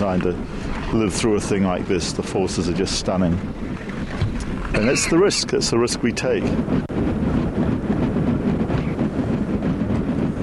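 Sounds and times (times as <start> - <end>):
speech: 0.0 - 3.9, 4.7 - 7.2
Arctic sea ice grinding and rumbling: 0.0 - 10.4.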